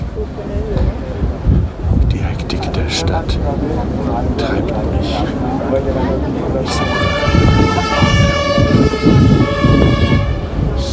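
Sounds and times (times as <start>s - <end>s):
low rumble of street traffic: 0.0s - 10.9s
vehicles passing: 0.0s - 10.9s
speech: 2.9s - 9.6s
ambulance siren wailing: 6.6s - 10.6s.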